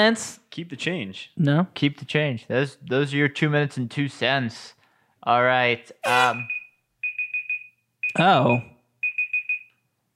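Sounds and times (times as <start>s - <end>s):
speech: 0.0s - 6.6s, 8.2s - 8.7s
timer alarm beeping in high electronic tones: 6.1s - 9.8s.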